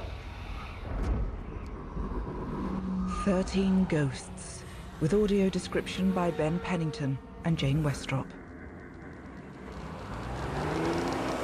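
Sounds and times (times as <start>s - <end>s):
tanker truck and fleet of 4x4 vehicles driving into a wrecking yard: 2.4s - 11.4s
speech: 3.2s - 8.4s.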